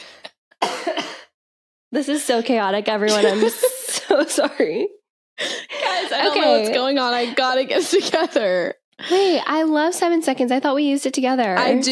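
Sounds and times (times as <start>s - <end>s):
person coughing in raspy bursts: 0.6s - 1.4s
speech: 0.9s - 1.1s, 1.9s - 11.9s
laughter: 3.1s - 4.9s, 5.7s - 6.6s.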